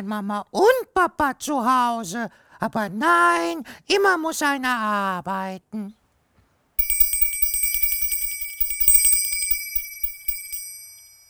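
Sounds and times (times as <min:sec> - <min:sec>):
speech: 0:00.0 - 0:06.0
small bell ringing rapidly: 0:06.8 - 0:11.2.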